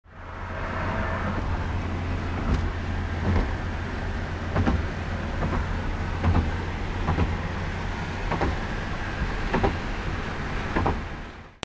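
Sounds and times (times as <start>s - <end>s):
highway traffic: 0.0s - 11.6s.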